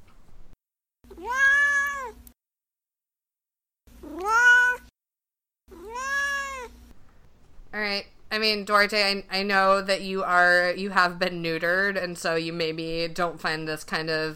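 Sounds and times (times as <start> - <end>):
cat meowing: 1.1 - 2.2, 4.0 - 4.9, 5.7 - 6.7
speech: 8.0 - 14.3.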